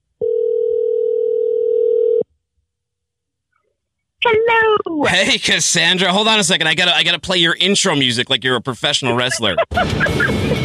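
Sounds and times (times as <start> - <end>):
telephone dial tone while dialing out: 0.2 - 2.2
speech: 4.5 - 10.5
laughter: 5.0 - 6.5, 8.8 - 10.6.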